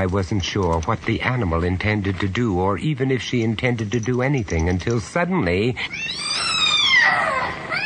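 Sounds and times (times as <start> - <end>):
speech: 0.0 - 6.6
cat yowling in a long wavering cry: 5.8 - 7.8.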